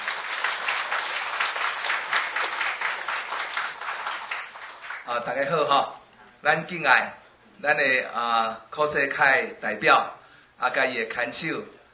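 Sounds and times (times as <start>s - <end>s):
lecture audience applauding to welcome a speaker: 0.0s - 5.1s
speech: 5.1s - 11.8s.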